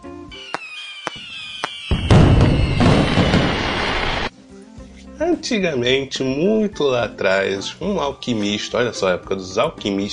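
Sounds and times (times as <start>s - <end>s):
fireworks exploding: 0.3s - 4.3s
speech: 5.2s - 10.1s.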